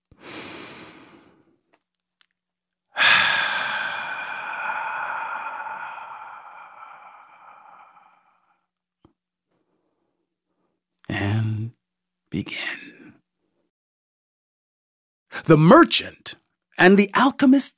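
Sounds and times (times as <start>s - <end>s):
slow deep breath: 0.1s - 1.6s, 3.0s - 8.7s
speech: 12.4s - 12.8s, 15.5s - 17.7s.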